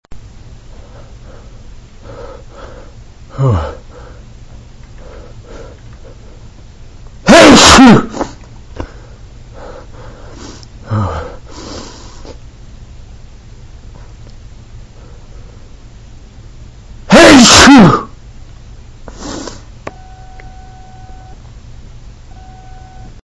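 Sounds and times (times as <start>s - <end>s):
man sneezing in the morning: 7.3s - 8.4s, 17.1s - 18.1s.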